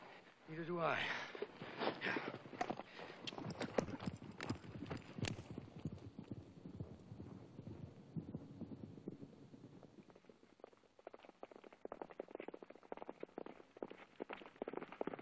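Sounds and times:
speech: 0:00.5 - 0:01.4
horse hooves clip-clopping: 0:01.4 - 0:15.2
low rumble: 0:03.6 - 0:11.4.

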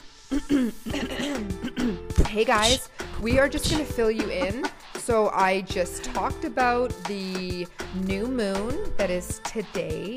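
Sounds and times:
throat clearing: 0:00.3 - 0:02.1
speech: 0:00.6 - 0:01.5, 0:02.3 - 0:10.1.

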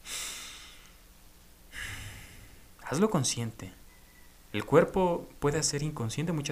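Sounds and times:
airy deep breath inhale during a meditation exercise: 0:00.0 - 0:01.0, 0:01.7 - 0:02.7
long audible exhale during a meditation exercise: 0:00.0 - 0:01.0, 0:01.7 - 0:02.7
speech: 0:02.9 - 0:03.8, 0:04.5 - 0:06.5.

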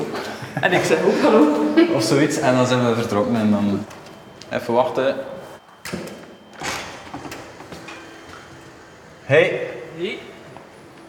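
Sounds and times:
laughter: 0:00.0 - 0:03.2
speech: 0:00.6 - 0:06.1, 0:09.3 - 0:10.3
door opening and closing as someone enters: 0:05.8 - 0:09.0.

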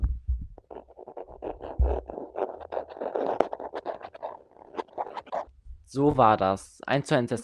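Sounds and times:
voice imitating a gnawing rasping sound inside a wall: 0:00.6 - 0:05.5
speech: 0:05.9 - 0:07.4.

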